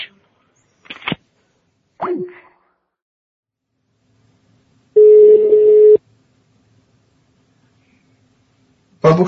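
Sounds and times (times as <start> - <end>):
steady mid-pitched telephone ringing tone: 5.0 - 6.0
speech: 9.1 - 9.2.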